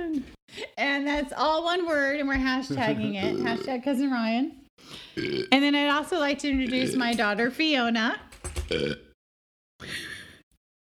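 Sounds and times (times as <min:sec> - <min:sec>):
speech: 0:00.2 - 0:09.0
short low burp: 0:02.7 - 0:03.8, 0:05.2 - 0:05.6, 0:06.6 - 0:07.1, 0:08.7 - 0:09.2
breathy gasping exhale: 0:04.8 - 0:05.3.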